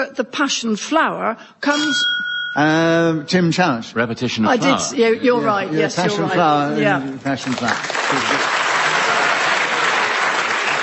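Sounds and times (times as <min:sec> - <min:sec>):
speech: 0:00.0 - 0:08.5
audience applause from a game show crowd: 0:07.3 - 0:10.8.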